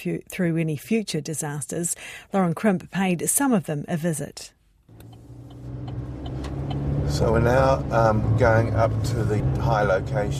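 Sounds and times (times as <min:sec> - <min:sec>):
speech: 0:00.0 - 0:05.2, 0:07.1 - 0:10.3
car engine humming as the car climbs a hill above Waimarama Beach: 0:04.9 - 0:10.3.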